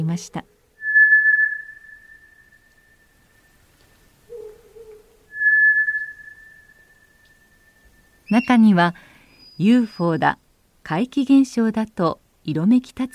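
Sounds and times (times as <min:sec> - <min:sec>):
speech: 0:00.0 - 0:00.5, 0:08.3 - 0:13.1
White's thrush whistling song: 0:00.8 - 0:04.5, 0:05.3 - 0:10.2.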